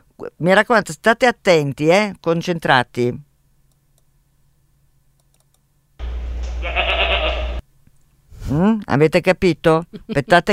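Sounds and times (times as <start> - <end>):
speech: 0.2 - 3.3, 8.5 - 10.5
goat bleating while waiting to eat: 6.6 - 7.6.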